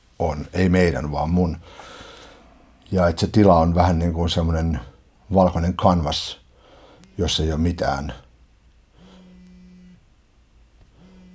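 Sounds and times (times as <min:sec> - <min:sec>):
speech: 0:00.2 - 0:02.0, 0:02.9 - 0:06.4, 0:07.2 - 0:08.2
mobile phone vibrating with an incoming call: 0:08.9 - 0:10.1, 0:10.9 - 0:11.3.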